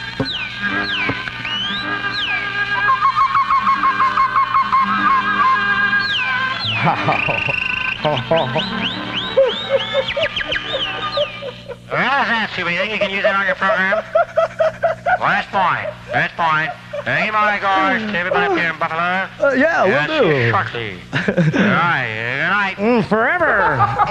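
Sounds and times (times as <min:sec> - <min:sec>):
South African man whistling and chirping in imitation of birdsong: 0:00.2 - 0:11.6
laughter: 0:06.6 - 0:22.2, 0:23.2 - 0:24.1
speech: 0:08.3 - 0:09.1, 0:12.2 - 0:14.6, 0:15.2 - 0:24.1.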